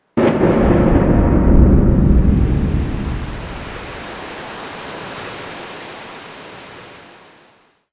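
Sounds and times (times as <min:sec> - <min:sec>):
autumn storm: 0:00.2 - 0:05.6.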